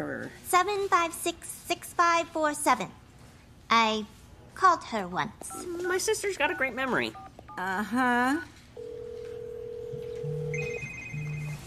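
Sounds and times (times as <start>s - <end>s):
speech: 0.0s - 3.0s, 3.7s - 8.6s
telephone on a desk ringing with electronic tones: 8.8s - 11.6s.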